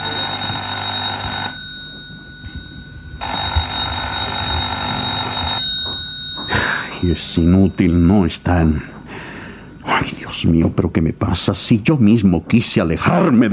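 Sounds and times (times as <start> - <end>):
telephone ringing with shrill electronic ringing: 0.0 - 9.1
speech: 7.0 - 9.0, 10.0 - 13.5.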